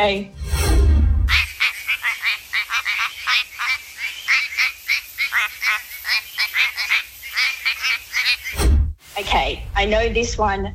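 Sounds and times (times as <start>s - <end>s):
speech: 0.0s - 0.4s, 9.3s - 10.7s
quacking frog from WA calling in duck-like bursts: 1.3s - 8.6s.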